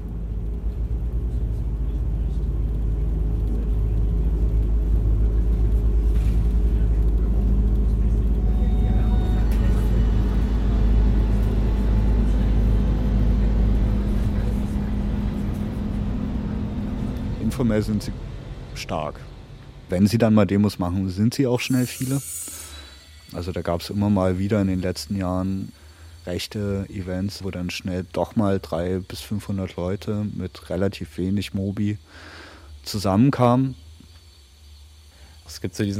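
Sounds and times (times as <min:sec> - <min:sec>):
bus engine revving as the bus pulls away and drives: 0:00.0 - 0:21.2
speech: 0:17.6 - 0:19.3, 0:19.9 - 0:22.4, 0:23.3 - 0:33.8, 0:35.5 - 0:35.9.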